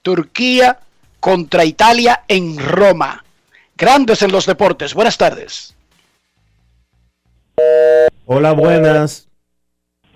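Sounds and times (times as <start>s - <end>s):
speech: 0.0s - 3.2s, 3.8s - 5.8s, 7.6s - 9.3s
telephone line tone on a phone call: 7.6s - 8.9s.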